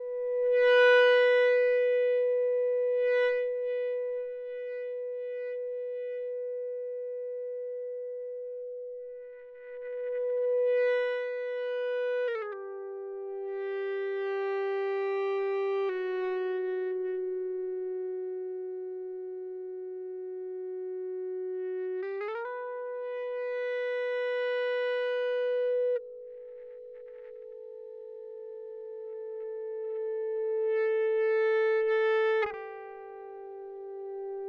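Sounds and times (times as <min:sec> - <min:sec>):
dry ebow guitar: 0:00.0 - 0:34.4.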